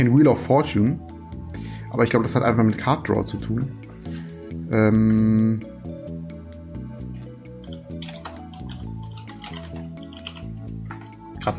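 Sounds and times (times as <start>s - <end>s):
speech: 0.0s - 3.8s, 4.6s - 5.7s
keyboard typing: 7.6s - 11.3s.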